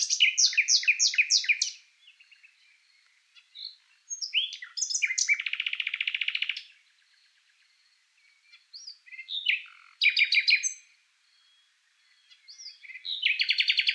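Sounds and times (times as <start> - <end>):
common nightingale song with buzzy trill: 0.0 - 13.9.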